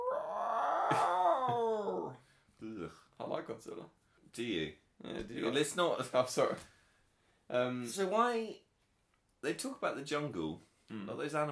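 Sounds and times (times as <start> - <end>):
person imitating the roar of a monster toy: 0.0 - 2.2
speech: 2.9 - 6.8, 7.5 - 8.6, 9.4 - 11.5.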